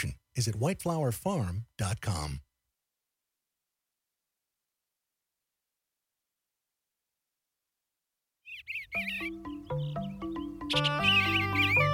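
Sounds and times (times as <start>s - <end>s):
speech: 0.0s - 2.5s, 8.6s - 9.8s
songbird warbling at the edge of a meadow in spring: 8.4s - 11.9s
sustained musical tones: 9.0s - 11.9s.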